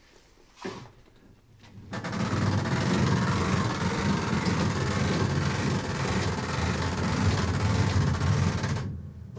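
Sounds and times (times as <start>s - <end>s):
coin-operated mechanical music player's motor being wound up: 1.9s - 8.9s.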